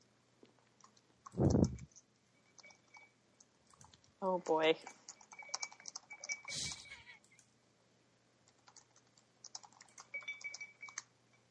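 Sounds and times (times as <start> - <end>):
typing on a computer keyboard: 0.6 - 4.1, 4.8 - 6.5, 8.4 - 11.1
speech: 4.3 - 5.0.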